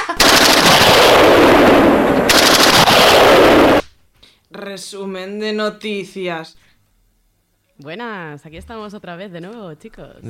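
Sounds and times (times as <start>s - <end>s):
machine gun fire: 0.2s - 3.9s
roaring rumble of bombing: 0.2s - 3.9s
speech: 4.8s - 6.7s, 7.8s - 10.2s.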